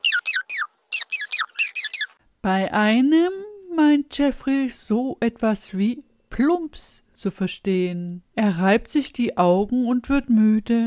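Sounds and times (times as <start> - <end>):
large birds making harsh descending squawks: 0.0 - 2.2
speech: 2.4 - 10.8.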